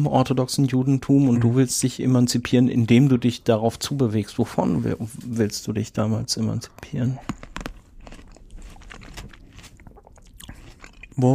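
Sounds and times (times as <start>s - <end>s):
speech: 0.0s - 7.5s, 11.2s - 11.3s
person chewing grapes: 6.8s - 11.3s.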